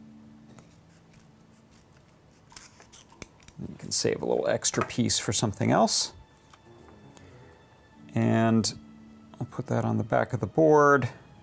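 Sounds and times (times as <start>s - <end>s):
scissors trimming foam tape: 0.5s - 3.6s
speech: 3.6s - 6.2s, 8.3s - 11.2s.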